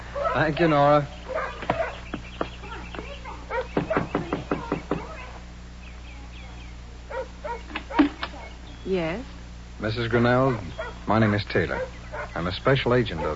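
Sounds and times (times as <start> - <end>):
speech: 0.4 - 1.2, 8.9 - 13.3
knocking on a trailer door: 1.6 - 5.2.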